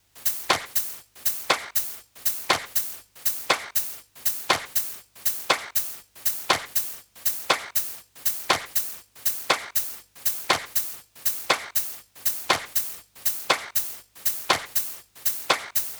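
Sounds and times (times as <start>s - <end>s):
house drum loop hi-hat at 120 bpm: 0.0s - 15.9s
house drum loop clap at 120 bpm: 0.4s - 0.8s, 1.4s - 1.8s, 2.5s - 2.8s, 3.5s - 3.8s, 4.4s - 4.8s, 5.4s - 5.8s, 6.4s - 6.8s, 7.4s - 7.8s, 8.5s - 8.8s, 9.5s - 9.8s, 10.5s - 10.8s, 11.4s - 11.8s, 12.4s - 12.8s, 13.4s - 15.9s.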